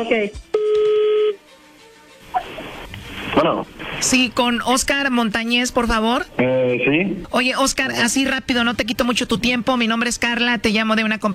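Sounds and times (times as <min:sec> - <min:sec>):
speech: 0:00.0 - 0:00.5, 0:03.4 - 0:11.3
telephone tones as a number is dialed: 0:00.6 - 0:01.4.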